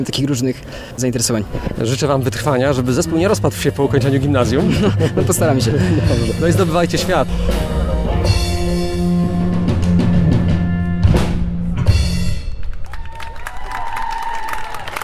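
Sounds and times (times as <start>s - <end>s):
speech: 0.0s - 7.7s
steady humming tones: 0.9s - 13.2s
laughter: 4.0s - 8.1s
applause and cheering from a large audience: 12.5s - 15.0s.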